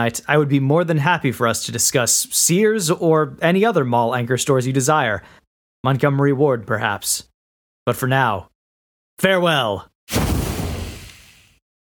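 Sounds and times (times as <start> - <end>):
speech: 0.0 - 7.3, 7.9 - 8.5, 9.2 - 10.2
smoke bomb going off: 10.1 - 11.6.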